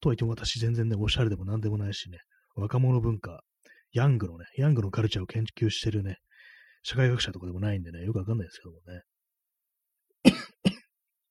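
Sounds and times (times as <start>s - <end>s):
speech: 0.0s - 6.2s, 6.8s - 9.1s
person coughing: 10.2s - 10.9s.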